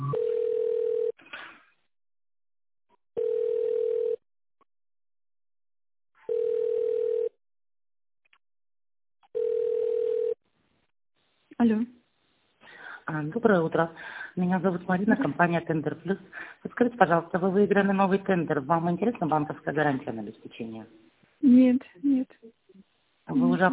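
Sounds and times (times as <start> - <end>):
telephone ringback tones during a call transfer: 0.1 - 1.1, 3.2 - 4.2, 6.3 - 7.4, 9.4 - 10.4
speech: 13.3 - 22.2, 23.6 - 23.7.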